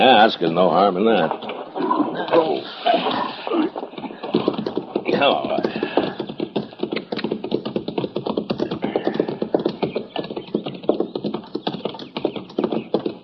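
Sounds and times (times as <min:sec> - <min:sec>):
speech: 0:00.0 - 0:03.1, 0:05.1 - 0:05.8
horses hooves clip-clopping over hard ground: 0:00.0 - 0:13.2.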